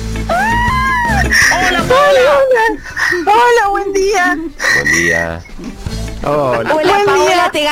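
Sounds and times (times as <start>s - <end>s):
woman shrieking and squealing with joy on winning an electric car: 0.3s - 1.8s
speech: 1.9s - 7.6s.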